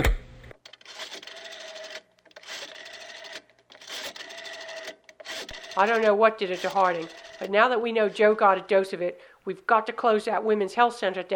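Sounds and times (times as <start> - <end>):
telephone being dialed with mechanical whirring: 0.0 - 8.7
speech: 5.8 - 11.3.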